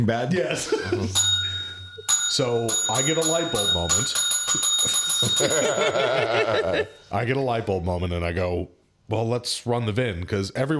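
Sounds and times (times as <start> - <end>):
speech: 0.0 - 1.4, 2.3 - 10.7
small bell ringing: 1.1 - 7.3
person laughing: 4.8 - 6.9.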